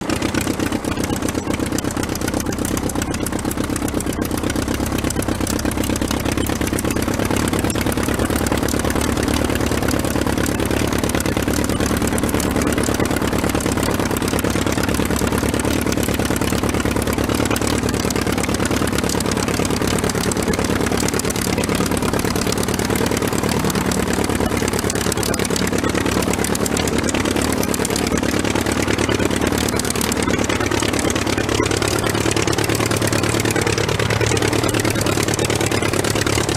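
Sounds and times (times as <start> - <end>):
aircraft engine running: 0.0 - 36.5.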